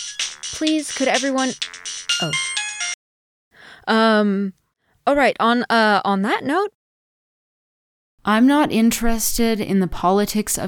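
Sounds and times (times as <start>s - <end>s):
speech: 0.0s - 2.6s, 3.9s - 6.8s, 8.2s - 10.6s
cell phone ringing with electronic ringtone: 0.0s - 3.0s.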